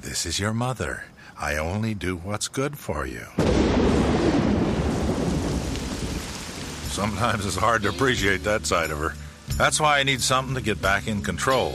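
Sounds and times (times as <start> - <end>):
speech: 0.1 - 4.4, 7.0 - 11.7
deep continuous rumble of thunder: 3.4 - 9.0
heavy rain: 3.4 - 11.7.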